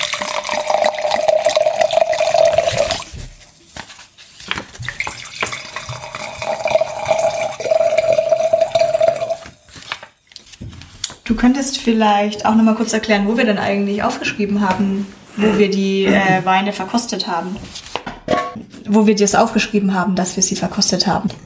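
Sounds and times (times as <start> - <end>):
red wine pouring into glasses: 0.0 - 3.2, 4.8 - 9.6
speech: 11.4 - 17.8, 18.9 - 21.4.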